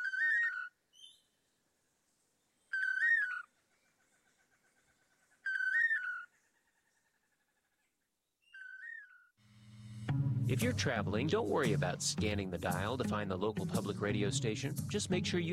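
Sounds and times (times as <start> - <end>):
two long-tailed manakins singing whistled toledo song as a duo: 0.0 - 1.5, 2.4 - 6.6, 8.3 - 9.4
speech: 10.5 - 15.5.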